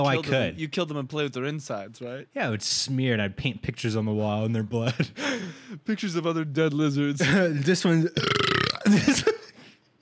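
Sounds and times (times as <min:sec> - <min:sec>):
speech: 0:00.0 - 0:09.4
loud croaky burp: 0:08.2 - 0:09.0.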